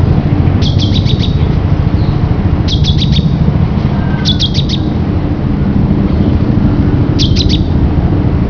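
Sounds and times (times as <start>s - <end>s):
steady low rumble: 0.0s - 8.4s
great tit calls: 0.6s - 1.5s, 2.6s - 4.9s, 7.2s - 7.7s.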